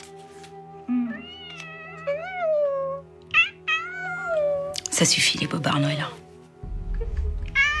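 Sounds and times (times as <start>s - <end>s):
cat meowing: 1.0s - 4.7s, 7.5s - 7.7s
speech: 5.0s - 6.2s.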